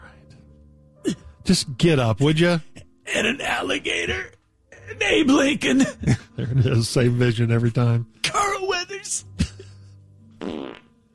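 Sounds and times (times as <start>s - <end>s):
speech: 1.5s - 8.2s
loud buzzy fart: 10.4s - 10.9s.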